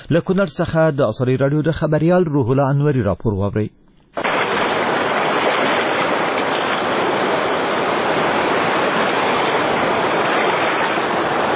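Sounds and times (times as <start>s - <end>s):
speech: 0.1s - 4.3s
flooded Kunar River in Afghanistan roaring: 4.2s - 11.5s.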